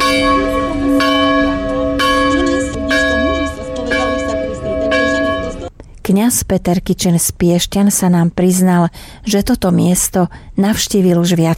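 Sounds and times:
church bells of the local church in San Giovanni Rotondo Italy pealing: 0:00.0 - 0:05.7
faint murmur of voices: 0:00.0 - 0:05.7
speech: 0:06.1 - 0:11.5.

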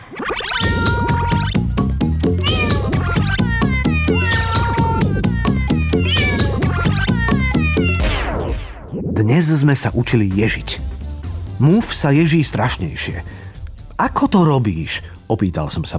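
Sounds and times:
cat meowing: 0:00.4 - 0:01.6, 0:02.2 - 0:08.0
speech: 0:09.3 - 0:11.0, 0:11.6 - 0:15.9.

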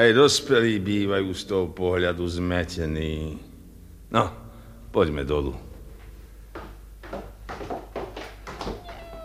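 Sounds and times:
speech: 0:00.0 - 0:03.5, 0:04.1 - 0:05.7
low hum: 0:00.0 - 0:09.2
kittens meowing: 0:08.6 - 0:09.2.

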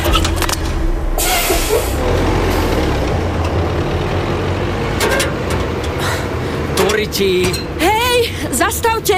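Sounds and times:
garbage truck heavy engine rumbling: 0:00.0 - 0:09.1
garbage truck air brake hisses: 0:01.2 - 0:02.0
speech: 0:07.0 - 0:09.1.

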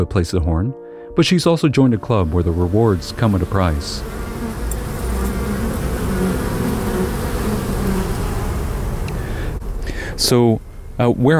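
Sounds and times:
speech: 0:00.0 - 0:04.2, 0:10.2 - 0:11.3
honeybees buzzing at a school beekeeping area: 0:02.1 - 0:11.1.

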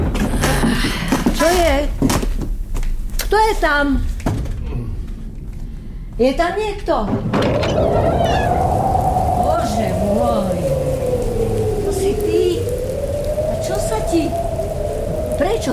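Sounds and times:
steady dense rain pattering: 0:00.0 - 0:04.1, 0:05.0 - 0:15.7
speech: 0:03.3 - 0:04.1, 0:06.2 - 0:08.5, 0:13.7 - 0:14.6, 0:15.4 - 0:15.7
long wavering tonal cry: 0:07.6 - 0:15.7.

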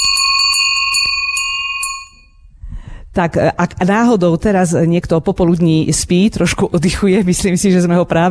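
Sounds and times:
sheep bell being shaken: 0:00.0 - 0:02.4
speech: 0:03.2 - 0:08.3.

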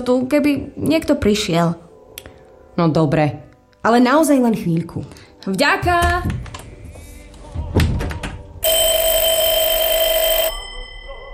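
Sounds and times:
speech: 0:00.0 - 0:01.8, 0:02.8 - 0:06.4
loud electric telephone bell ringing in a post office: 0:08.6 - 0:11.3.

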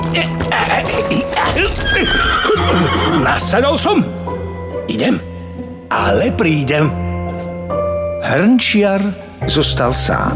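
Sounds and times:
speech: 0:00.1 - 0:05.3, 0:05.9 - 0:07.0, 0:08.2 - 0:10.3
horse neighing: 0:01.6 - 0:03.5.

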